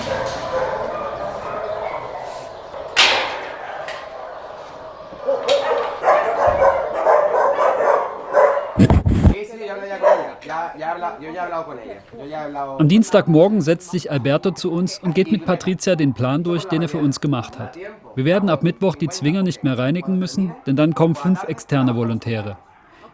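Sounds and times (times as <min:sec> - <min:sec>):
Podenco dogs whining in kennel enclosures: 0:00.0 - 0:09.4, 0:10.0 - 0:10.5
laughter: 0:00.0 - 0:23.1
small Podenco dogs barking and yipping in kennel enclosures: 0:00.0 - 0:23.1
speech: 0:11.1 - 0:23.1.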